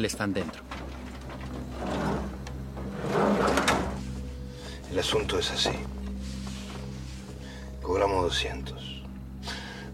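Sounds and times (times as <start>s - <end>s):
speech: 0.0s - 0.7s, 4.9s - 6.0s, 7.9s - 9.0s
van side door sliding open and shut on a parked white van: 0.6s - 4.3s.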